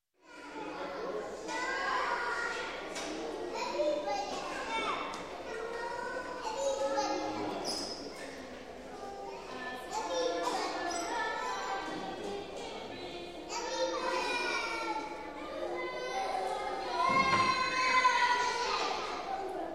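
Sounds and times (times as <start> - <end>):
children playing in a gymnasium: 0.2 - 19.7.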